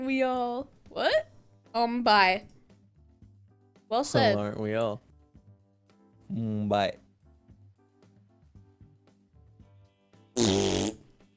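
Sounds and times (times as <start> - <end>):
speech: 0.0 - 2.5, 3.9 - 5.1, 6.3 - 7.0, 10.4 - 10.8
fart: 10.4 - 11.2.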